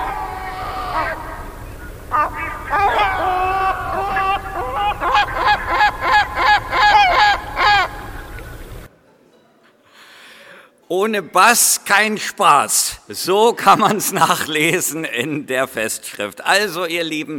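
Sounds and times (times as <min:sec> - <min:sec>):
laughter: 0:00.0 - 0:08.7, 0:13.5 - 0:15.7
great black-backed gull calls: 0:00.0 - 0:08.9
faint hiss: 0:00.0 - 0:17.3
speech: 0:11.0 - 0:17.3.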